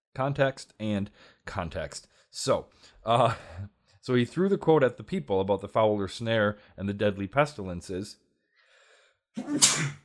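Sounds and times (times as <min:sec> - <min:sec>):
speech: 0:00.2 - 0:08.2, 0:09.3 - 0:10.0
person sneezing: 0:09.4 - 0:10.0.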